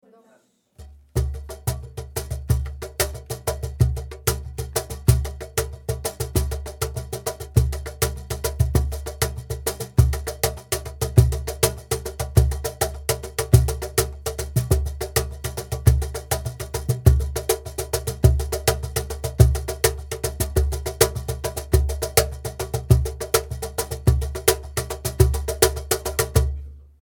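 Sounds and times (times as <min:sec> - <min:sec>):
cajón drum: 0:00.8 - 0:26.7.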